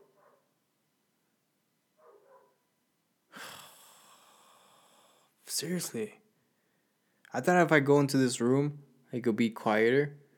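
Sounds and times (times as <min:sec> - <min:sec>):
dog barking: 0:00.0 - 0:00.5, 0:02.0 - 0:02.6
speech: 0:05.6 - 0:06.2, 0:07.3 - 0:10.2.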